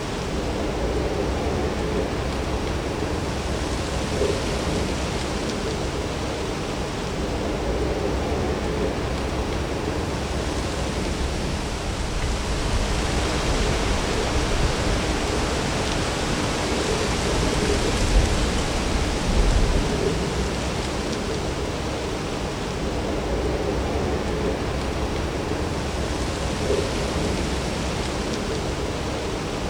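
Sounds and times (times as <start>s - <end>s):
wind through trees: 0.0s - 29.6s.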